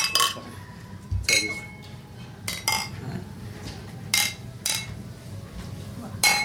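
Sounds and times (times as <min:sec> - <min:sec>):
beer glasses clinking together in a toast: 0:00.0 - 0:00.5, 0:01.3 - 0:03.0, 0:04.1 - 0:05.0, 0:06.2 - 0:06.4
low murmur of noise: 0:00.0 - 0:06.4.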